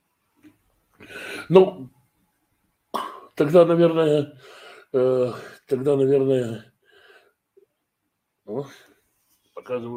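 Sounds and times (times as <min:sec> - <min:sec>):
speech: 0:01.1 - 0:02.0, 0:03.4 - 0:06.7, 0:08.5 - 0:08.9, 0:09.6 - 0:09.9
single short cough: 0:02.9 - 0:03.4.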